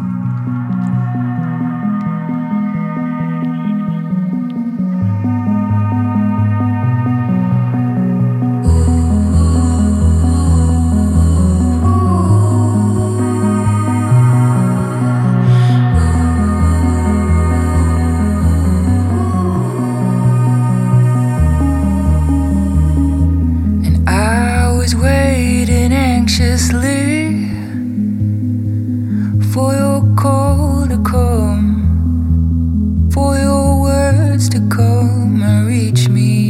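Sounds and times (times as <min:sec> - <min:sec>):
brighter shimmering layer: 0:00.0 - 0:29.7
sustained droning pad chords in atmospheric instrumental music: 0:00.0 - 0:35.7
deep bass line: 0:00.0 - 0:36.4.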